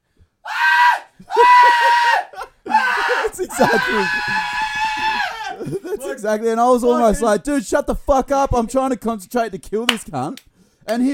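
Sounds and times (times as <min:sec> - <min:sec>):
person imitating a terrified scream: 0:00.5 - 0:05.6
laughter: 0:01.2 - 0:07.4
speech: 0:03.6 - 0:04.6, 0:06.2 - 0:11.1
gasp: 0:10.5 - 0:10.9.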